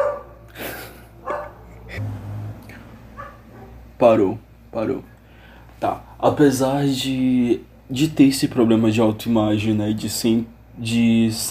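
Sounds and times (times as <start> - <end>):
dog barking: 0.0 - 0.4, 1.2 - 2.0, 3.2 - 3.8
low hum: 0.0 - 11.4
speech: 4.0 - 5.1, 5.8 - 11.4.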